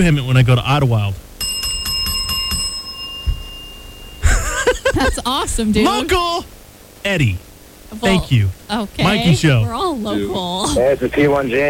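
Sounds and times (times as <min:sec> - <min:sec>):
speech: 0:00.0 - 0:01.3, 0:05.0 - 0:11.6
bright metallic bell ringing: 0:01.4 - 0:04.3
laughter: 0:04.2 - 0:06.2, 0:09.0 - 0:11.6.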